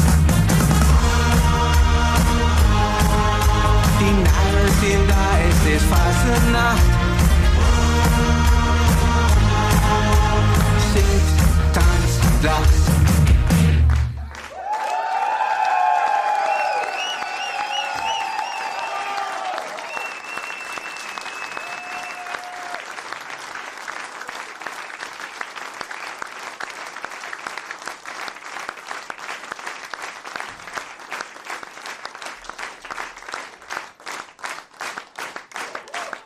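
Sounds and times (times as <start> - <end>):
dense crowd applause: 0.0 - 36.2
voices cheering over clapping: 14.0 - 27.6, 35.5 - 36.2.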